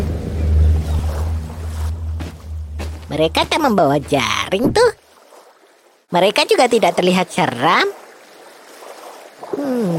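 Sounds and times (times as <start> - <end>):
boat engine drone: 0.0 - 4.9
wash of open sea: 0.0 - 9.9
speech: 3.2 - 5.0, 6.1 - 8.0, 9.5 - 9.9.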